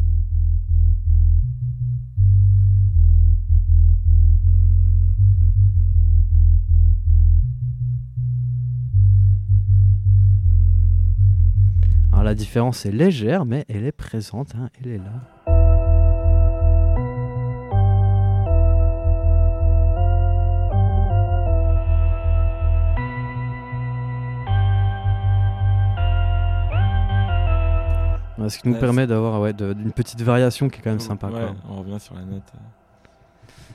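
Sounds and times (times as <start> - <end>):
solo dub bass line with heavy reverb: 0.0 - 12.6, 15.5 - 29.2
speech: 12.3 - 15.4, 28.5 - 32.8.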